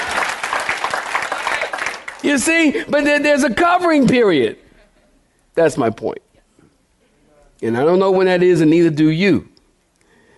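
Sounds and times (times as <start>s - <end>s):
congregation clapping hands: 0.0s - 2.8s
speech: 2.2s - 4.6s, 5.6s - 6.2s, 7.6s - 9.5s.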